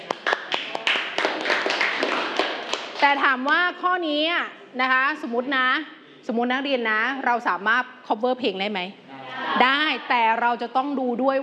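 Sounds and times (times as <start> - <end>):
class of students clapping hands: 0.0 - 3.2
speech: 3.0 - 11.4.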